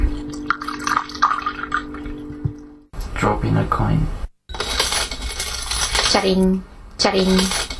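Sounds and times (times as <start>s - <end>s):
wine pouring into a glass: 0.1s - 2.4s
speech: 3.2s - 4.2s, 6.1s - 7.6s.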